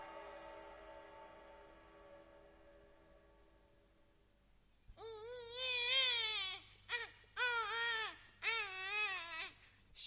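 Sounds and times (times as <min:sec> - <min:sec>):
baby crying: 0:05.0 - 0:09.6.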